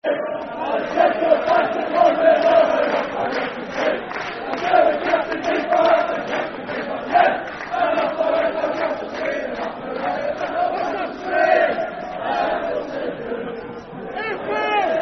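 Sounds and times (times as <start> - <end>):
football crowd chanting a soccer song: 0.0 - 15.0.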